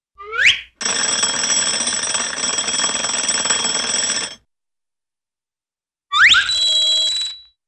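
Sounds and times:
ascending cartoon slide whistle: 0:00.2 - 0:00.7, 0:06.1 - 0:07.6
alarm clock-like cartoon bell ringing: 0:00.8 - 0:04.4.

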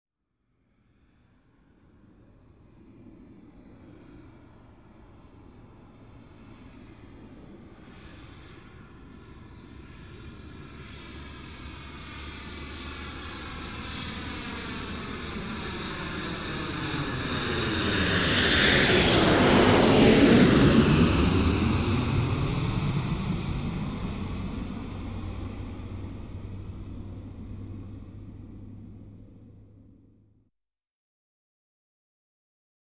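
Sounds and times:
Boeing 747 airplane flying over: 0:01.6 - 0:30.2.

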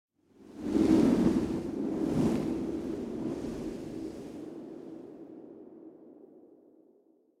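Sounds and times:
short passing whistling wind gust: 0:00.4 - 0:06.1.

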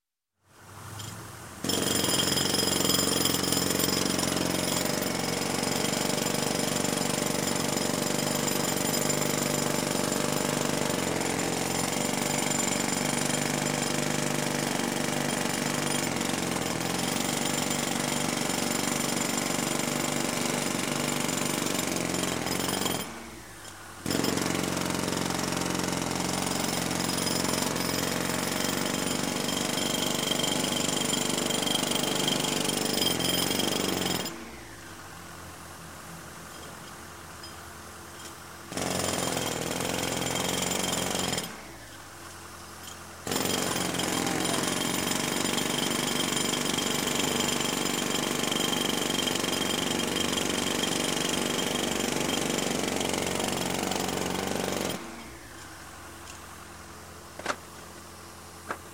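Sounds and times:
jackhammer hammering at construction: 0:01.6 - 0:34.7, 0:38.2 - 0:41.9, 0:42.8 - 0:56.4.

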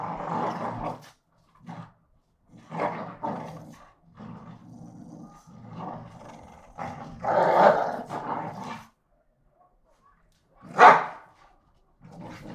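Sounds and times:
two American Pit Bull Terriers growling and barking during a fight: 0:00.0 - 0:09.0, 0:12.0 - 0:12.5
American Pit Bull Terrier yelp-like bark: 0:10.8 - 0:11.2.

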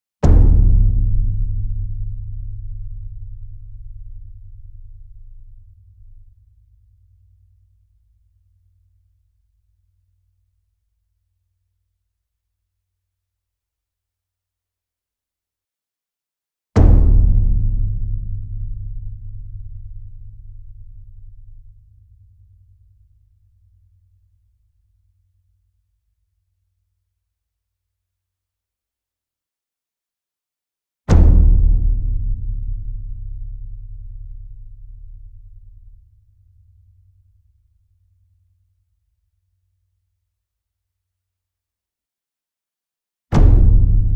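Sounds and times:
large concert bass drum hit: 0:00.2 - 0:05.7, 0:16.8 - 0:21.7, 0:31.1 - 0:35.4, 0:43.4 - 0:44.1.

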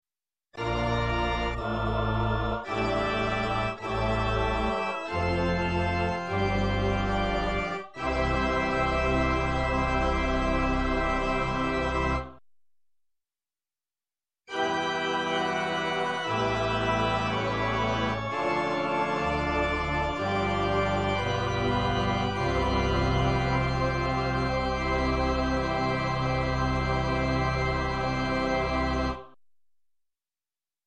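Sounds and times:
organ bridge music: 0:00.6 - 0:12.4, 0:14.5 - 0:29.3
choir singing: 0:01.0 - 0:07.6, 0:19.3 - 0:28.8.

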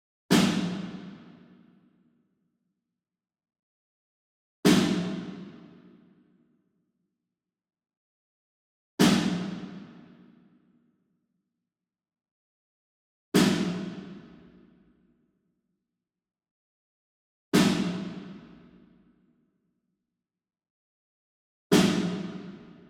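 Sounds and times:
Ludwig Black Beauty snare drum hit far: 0:00.3 - 0:01.3, 0:04.7 - 0:05.6, 0:09.0 - 0:10.0, 0:13.4 - 0:14.3, 0:17.6 - 0:18.5, 0:21.7 - 0:22.8.

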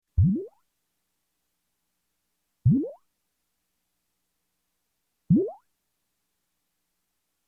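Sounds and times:
electronic space bubbles: 0:00.2 - 0:00.6, 0:02.7 - 0:03.0, 0:05.3 - 0:05.6.

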